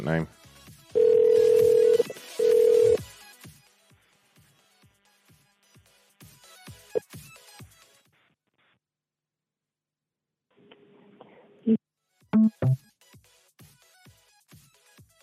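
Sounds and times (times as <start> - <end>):
speech: 0.0 - 0.4
British telephone ringback while calling a photography business: 1.0 - 3.0.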